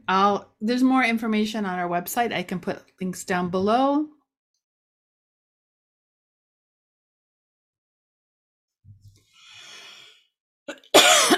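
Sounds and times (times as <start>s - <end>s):
speech: 0.1s - 4.2s
soft intake of breath: 9.4s - 10.2s
person coughing sharply: 10.7s - 11.3s.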